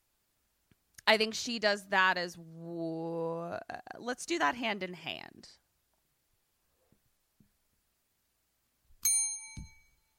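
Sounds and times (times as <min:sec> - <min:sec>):
speech: 0:01.1 - 0:02.7, 0:04.0 - 0:05.6
bell ding: 0:09.0 - 0:10.1.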